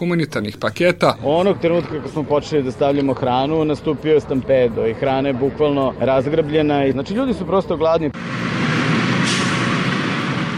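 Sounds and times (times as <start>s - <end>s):
speech: 0.0s - 8.6s
bus engine rumble and road noise: 0.0s - 10.5s
brief brighter hiss: 9.2s - 9.8s.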